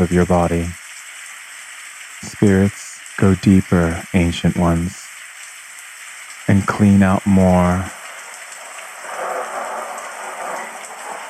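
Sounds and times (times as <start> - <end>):
speech: 0.0 - 0.8, 2.2 - 5.0, 6.5 - 8.0
steady hissing rainfall: 0.0 - 11.2
thunder rolling: 8.0 - 11.2.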